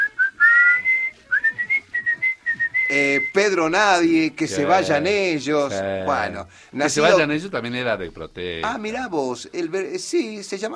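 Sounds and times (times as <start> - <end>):
whistled melody: 0.0 - 3.4
speech: 2.9 - 10.7.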